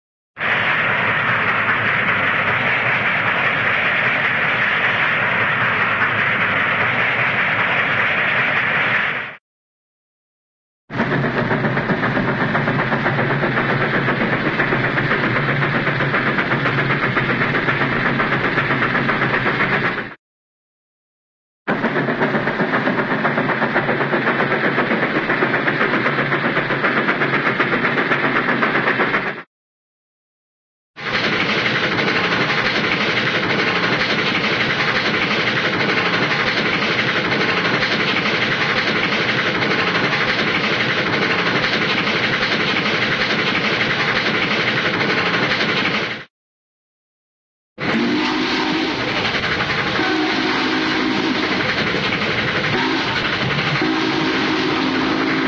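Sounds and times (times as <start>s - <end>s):
cartoon steam train running: 0.4s - 9.4s, 10.9s - 20.2s, 21.7s - 29.5s, 31.0s - 46.3s, 47.8s - 55.4s.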